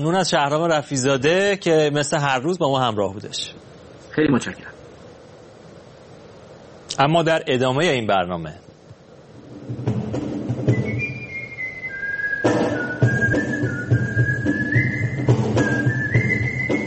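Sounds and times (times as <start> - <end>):
speech: 0.0 - 4.7, 7.0 - 8.6
steady noise: 0.0 - 16.8
melodic whistling by whistle players at a gathering in Japan: 10.5 - 16.8.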